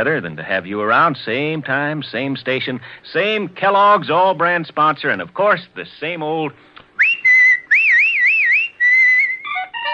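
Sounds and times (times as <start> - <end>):
speech: 0.0 - 6.7
person whistling a lively tune: 7.0 - 9.8.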